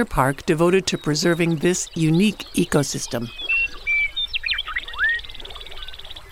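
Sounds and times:
speech: 0.0 - 3.4
bird whistles and chirps: 3.3 - 6.2.

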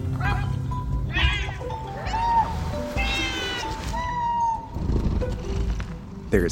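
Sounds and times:
low rumbling background: 0.0 - 6.4
neighborhood cat meowing with wavering cries: 0.2 - 4.7.

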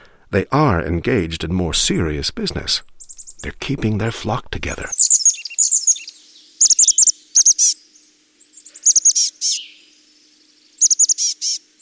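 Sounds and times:
speech: 0.3 - 5.1
chickadee calls: 2.8 - 3.5, 4.8 - 11.7.

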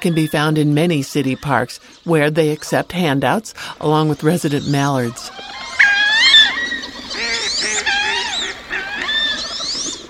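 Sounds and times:
speech: 0.0 - 5.6
Wood Duck giving squealing rising whistled calls: 5.5 - 10.0.

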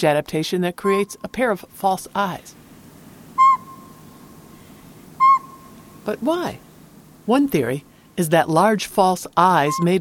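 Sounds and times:
speech: 0.0 - 2.6, 6.0 - 10.0
low hum: 0.0 - 10.0
northern pygmy owl whistled toots: 0.8 - 1.2, 3.4 - 4.1, 5.2 - 5.8, 9.7 - 9.9.

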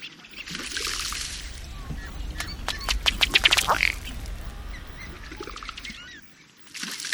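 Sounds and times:
male ruddy duck running across water with rapidly beating wings: 0.5 - 6.1.

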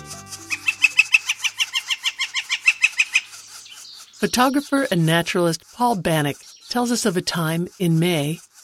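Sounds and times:
low musical tone: 0.0 - 1.0
northern flicker parents calling in a North Carolina forest: 0.3 - 8.3
speech: 4.2 - 8.4.

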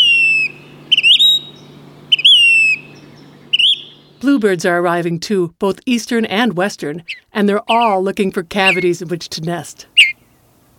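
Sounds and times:
Say's phoebe calling: 0.0 - 4.2, 8.6 - 8.9, 10.0 - 10.3
faint steady low hum: 0.0 - 10.7
speech: 4.2 - 9.9.

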